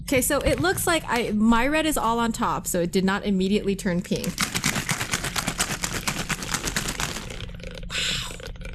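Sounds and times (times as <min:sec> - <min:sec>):
speech: 0:00.1 - 0:04.6
drink mixture being shaken against the microphone: 0:04.2 - 0:07.5.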